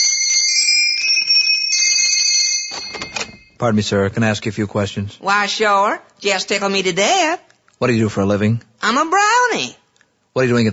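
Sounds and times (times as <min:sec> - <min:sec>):
workshop doorbell ringing with bright steady metallic ring: 0:00.0 - 0:03.6
speech: 0:03.6 - 0:09.8, 0:10.4 - 0:10.7.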